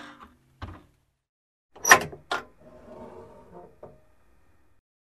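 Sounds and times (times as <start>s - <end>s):
small safe opening: 1.8s - 2.7s.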